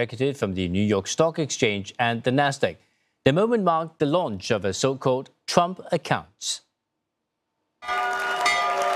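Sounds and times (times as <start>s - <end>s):
speech: 0.0s - 6.7s
opening bell ringing at the stock exchange: 7.8s - 8.9s.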